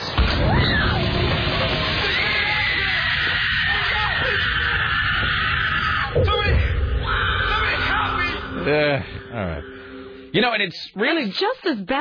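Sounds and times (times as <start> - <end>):
crash: 0.0 - 8.6
people yelling: 0.2 - 9.1
acted scream in a kitchen accident: 2.0 - 8.8
speech: 10.3 - 12.0.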